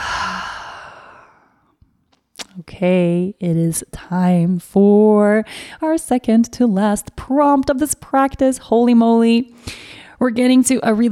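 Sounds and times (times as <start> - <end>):
deep breath let out as a sigh during a guided breathing exercise: 0.0 - 1.7
speech: 2.6 - 11.1.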